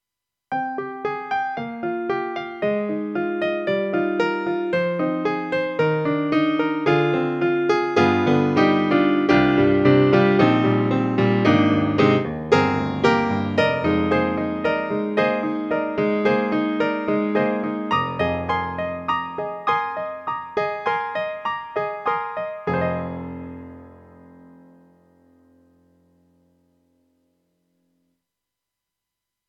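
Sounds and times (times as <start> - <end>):
soft grand piano sound from an AKAI SG01p sound module: 0.5 - 28.0.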